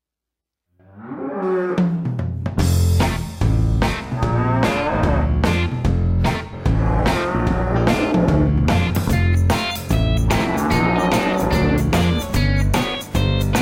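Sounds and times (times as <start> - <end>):
cow mooing: 0.8 - 2.0, 4.1 - 5.4, 6.7 - 8.7, 10.4 - 12.1
loud bouncy music with heavy percussive beats: 1.8 - 13.6.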